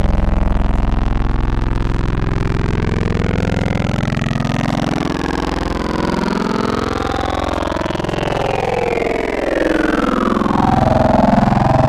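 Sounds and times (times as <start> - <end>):
vocal formant bot wavetable synth: 0.0 - 11.8.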